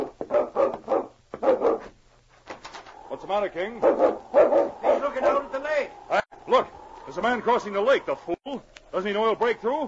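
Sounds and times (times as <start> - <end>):
dog barking in sharp woofs: 0.0 - 1.9, 3.8 - 5.5
speech: 3.3 - 9.8.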